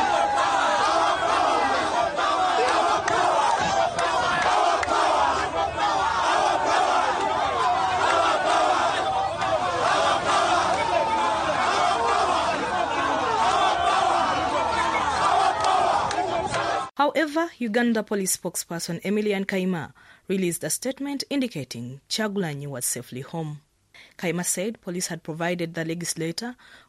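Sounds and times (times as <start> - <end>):
large crowd chanting slogans and shouting: 0.0 - 16.9
speech: 17.1 - 26.8.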